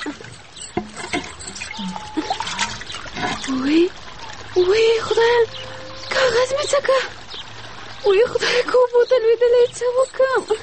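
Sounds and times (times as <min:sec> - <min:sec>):
warm water trickling: 0:00.0 - 0:10.6
speech: 0:03.5 - 0:04.0, 0:04.6 - 0:07.2, 0:08.0 - 0:10.6.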